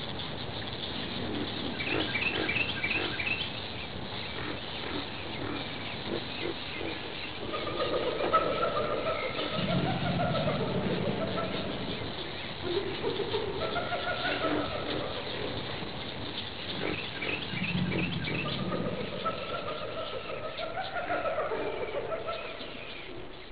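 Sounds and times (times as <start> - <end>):
birds: 0.0 - 23.5.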